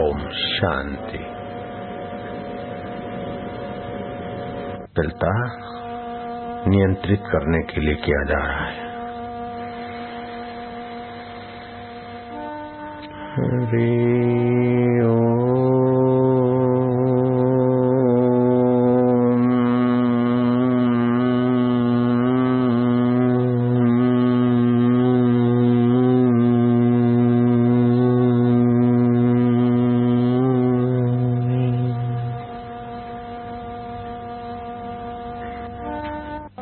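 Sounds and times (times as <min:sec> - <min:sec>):
deep resonant chanted Om hum in Omkar Gunjan meditation: 0:00.0 - 0:36.6
speech: 0:00.6 - 0:01.4, 0:05.0 - 0:05.8, 0:06.6 - 0:08.8, 0:13.7 - 0:14.1.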